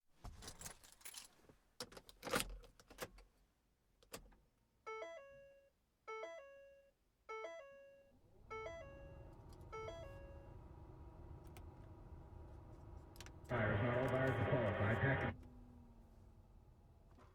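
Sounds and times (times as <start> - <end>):
person getting into car: 8.2 - 15.6.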